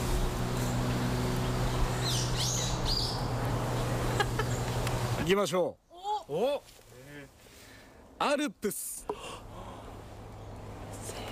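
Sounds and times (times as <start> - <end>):
birds chirping and warbling: 0.0 - 6.5, 9.1 - 11.2
steady outdoor hum: 0.0 - 8.2, 8.9 - 11.2
speech: 5.3 - 7.4, 8.2 - 9.4.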